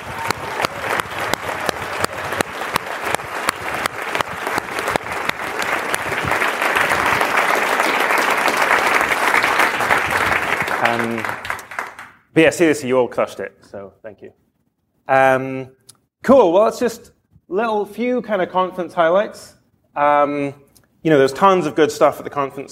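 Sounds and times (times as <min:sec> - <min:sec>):
audience applause: 0:00.0 - 0:12.2
speech: 0:12.4 - 0:14.4, 0:15.1 - 0:22.6.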